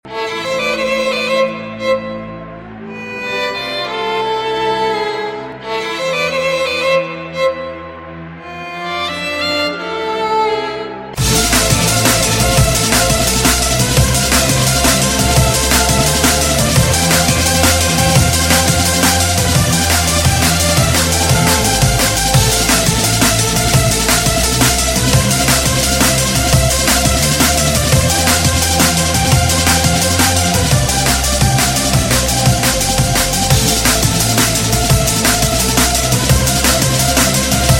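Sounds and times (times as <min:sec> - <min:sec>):
violin: 0:00.0 - 0:37.7
drum and bass music: 0:11.2 - 0:37.7.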